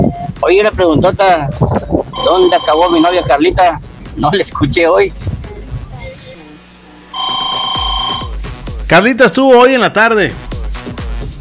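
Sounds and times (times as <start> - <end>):
speech: 0.0 - 5.3, 8.9 - 10.4
loud electronic warbling telephone ringtone for an incoming call: 2.2 - 3.3, 7.1 - 8.3.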